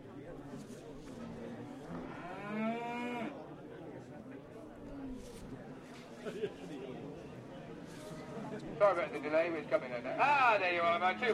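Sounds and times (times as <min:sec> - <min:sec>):
murmur of chatter: 0:00.0 - 0:11.3
big Aberdeen Angus cow mooing: 0:02.1 - 0:03.4
speech: 0:08.8 - 0:11.3.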